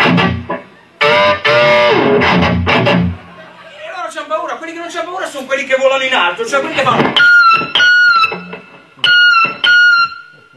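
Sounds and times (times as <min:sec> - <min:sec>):
seagull calls imitated on an electric guitar with effects: 0:00.0 - 0:03.8, 0:06.9 - 0:10.5
speech: 0:04.9 - 0:07.6.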